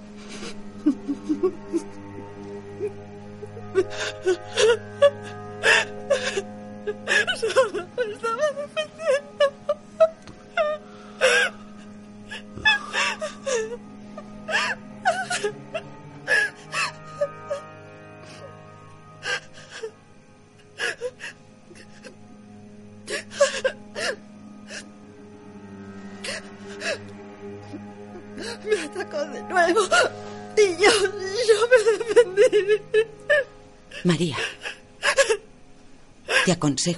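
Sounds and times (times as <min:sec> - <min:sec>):
woman crying on the floor at home: 0:00.2 - 0:02.0, 0:02.8 - 0:18.6, 0:19.2 - 0:20.0, 0:20.6 - 0:22.2, 0:23.0 - 0:24.9, 0:26.2 - 0:35.5, 0:36.3 - 0:36.7.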